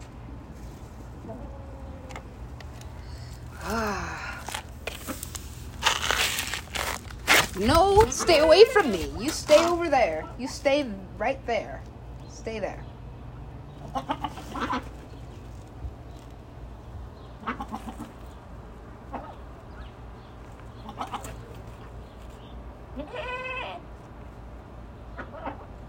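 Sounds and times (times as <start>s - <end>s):
steady low hum: 0.0s - 25.8s
speech: 1.3s - 1.6s, 7.6s - 12.9s, 14.0s - 14.4s
goat bleating: 13.9s - 14.8s, 20.8s - 21.4s, 23.0s - 23.8s.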